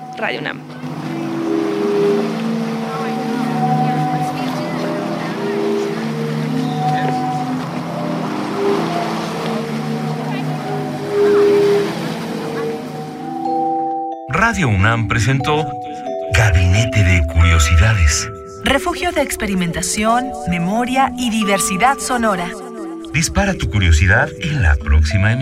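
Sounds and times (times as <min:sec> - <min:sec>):
constant wash and surf of ocean waves: 0:00.0 - 0:13.8
65-metre sea organ sounding as waves push air through its pipes: 0:00.0 - 0:25.4
speech: 0:00.2 - 0:01.0, 0:14.5 - 0:15.8, 0:17.5 - 0:25.4.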